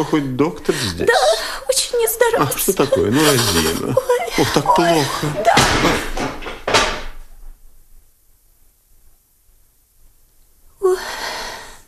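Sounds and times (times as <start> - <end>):
speech: 0.0 - 6.3
laughter: 2.8 - 6.1
wooden chair toppling over: 4.8 - 7.3.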